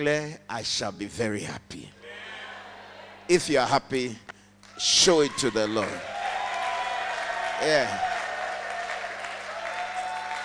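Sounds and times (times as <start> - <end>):
speech: 0.0 - 2.0, 3.3 - 6.1, 7.6 - 8.1
crowd clapping at a worship gathering: 5.8 - 10.4.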